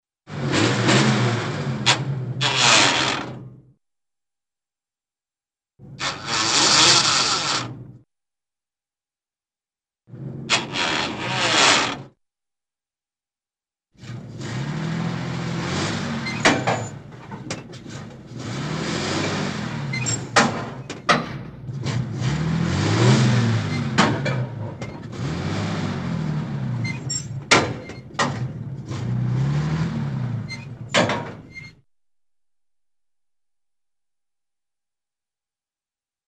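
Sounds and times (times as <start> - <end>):
1946 Dodge delivery truck gears grinding: 0.3 - 3.7, 5.9 - 8.0, 10.1 - 12.2, 14.0 - 31.9.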